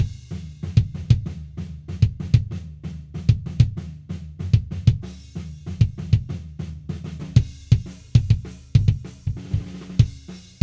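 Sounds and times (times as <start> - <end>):
kick drum without EQ: 0.0 - 1.3, 2.0 - 2.6, 3.3 - 3.8, 4.5 - 5.1, 5.8 - 6.3, 7.4 - 10.6.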